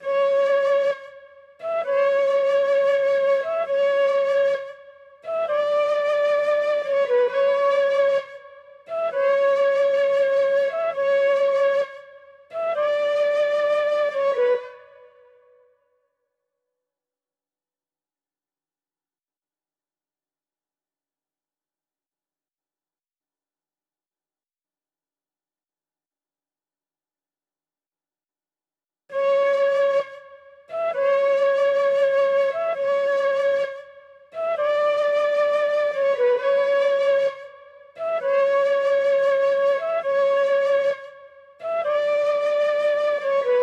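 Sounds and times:
flute melody in F sharp minor: 0:00.0 - 0:15.6, 0:29.1 - 0:43.6.

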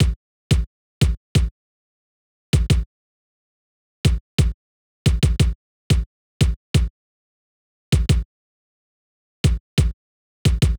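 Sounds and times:
kick drum in C minor: 0:00.0 - 0:01.5, 0:02.6 - 0:02.9, 0:04.1 - 0:06.9, 0:08.0 - 0:08.2, 0:09.4 - 0:10.7.

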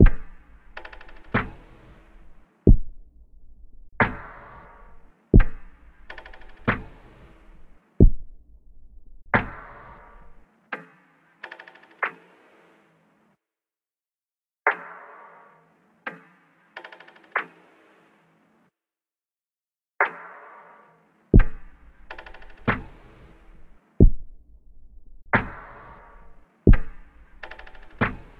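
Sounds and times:
drums in B minor: 0:00.0 - 0:12.5, 0:16.1 - 0:18.0, 0:21.4 - 0:28.3.

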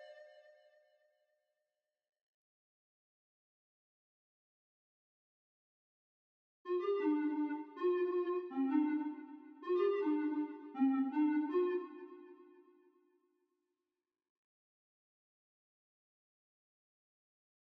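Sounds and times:
lead synth in G major: 0:06.7 - 0:12.0.

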